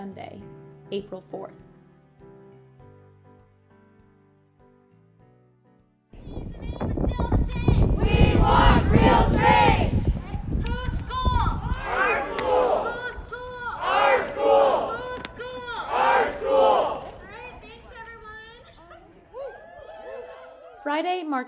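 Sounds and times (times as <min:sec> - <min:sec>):
speech: 0:00.0 - 0:01.7, 0:21.0 - 0:21.4
crowd of graduate student protesters chanting and shouting outside a building: 0:06.2 - 0:20.9.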